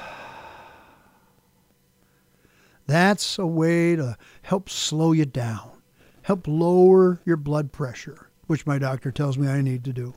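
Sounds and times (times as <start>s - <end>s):
slow soft exhaling breath during a calming breathing exercise: 0.0s - 1.4s
speech: 2.9s - 10.1s.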